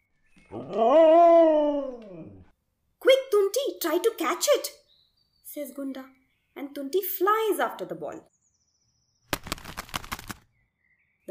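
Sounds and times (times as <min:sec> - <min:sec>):
speech: 0:00.5 - 0:01.2, 0:03.8 - 0:04.8, 0:05.5 - 0:08.3
dog howling: 0:00.5 - 0:02.5.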